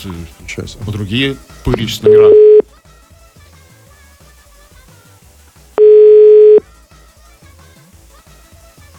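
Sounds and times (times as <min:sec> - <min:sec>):
speech: 0:00.0 - 0:02.4
telephone busy-signal beep: 0:02.0 - 0:02.6, 0:05.8 - 0:06.6.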